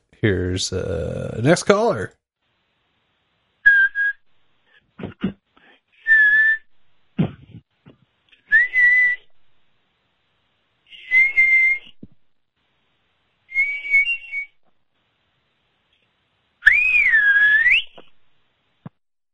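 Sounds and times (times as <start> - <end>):
speech: 0.2 - 2.2
caller on the phone whistling a musical scale: 3.7 - 4.2, 6.0 - 6.7, 8.4 - 9.3, 10.9 - 12.0, 13.5 - 14.6, 16.6 - 18.1.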